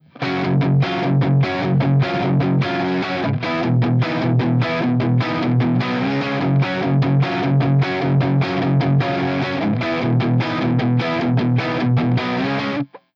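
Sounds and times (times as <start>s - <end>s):
Strat electric guitar with hot neck pickup and dirty tone: 0.0s - 13.1s.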